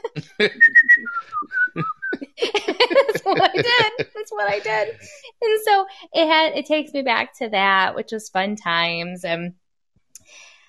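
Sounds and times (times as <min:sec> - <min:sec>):
laughter: 0:00.0 - 0:05.2
speech: 0:00.4 - 0:01.9, 0:03.4 - 0:09.6
person whistling the chorus of a song: 0:00.4 - 0:02.2.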